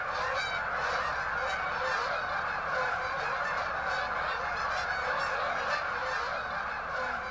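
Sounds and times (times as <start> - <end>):
huge flock of geese honking: 0.0 - 7.2.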